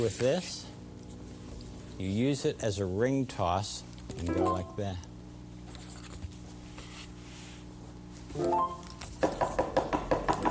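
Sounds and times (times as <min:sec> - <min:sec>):
speech: 0:00.0 - 0:00.7, 0:02.0 - 0:05.1, 0:08.4 - 0:08.8
low steady hum: 0:00.0 - 0:09.2
sharp knocks on a door: 0:09.2 - 0:10.4.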